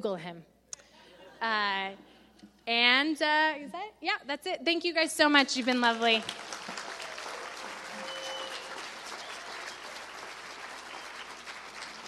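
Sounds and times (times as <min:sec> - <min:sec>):
speech: 0:00.0 - 0:00.6, 0:01.4 - 0:06.8
full room of people clapping: 0:05.7 - 0:12.0
faint whistles and cheers: 0:06.8 - 0:12.0.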